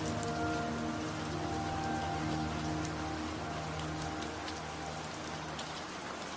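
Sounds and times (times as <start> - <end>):
steady rain pattering on a roof and windows: 0.0 - 6.3.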